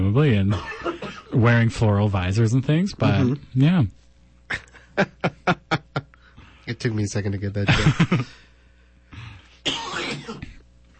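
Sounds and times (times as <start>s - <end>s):
speech: 0.0s - 5.4s, 6.7s - 8.4s
harsh coughing and throat clearing: 0.5s - 1.4s, 9.6s - 10.7s
laughter: 4.5s - 6.2s, 7.6s - 8.4s.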